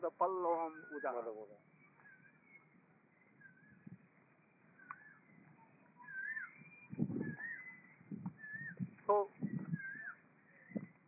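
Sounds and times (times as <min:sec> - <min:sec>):
speech: 0:00.0 - 0:01.8
cuckoos calling in clear rising whistled notes: 0:00.0 - 0:11.0
low rumbling noise: 0:02.7 - 0:11.0
dull low thumps: 0:06.9 - 0:07.4, 0:08.0 - 0:09.9.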